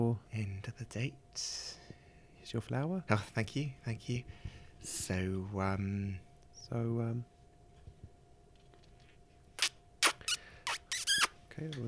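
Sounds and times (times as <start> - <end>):
speech: 0.0 - 1.8, 2.4 - 7.3, 11.6 - 11.8
nervous squeaky wet kisses at an underground station entrance: 9.6 - 11.4.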